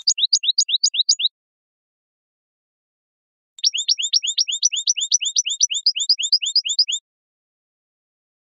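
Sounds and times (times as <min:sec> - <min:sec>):
European goldfinch song: 0:00.0 - 0:01.3, 0:03.6 - 0:07.0.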